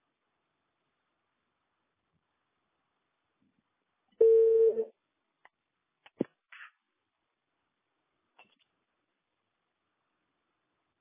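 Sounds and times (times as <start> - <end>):
telephone busy tone: 4.2 - 4.9.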